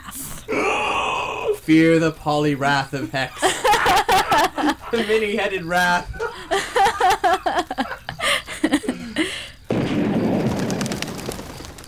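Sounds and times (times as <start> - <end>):
chirping bird calls: 0.0 - 9.8
speech: 1.7 - 3.6, 4.9 - 6.6
laughter: 3.3 - 9.4
gunshot: 9.7 - 11.8.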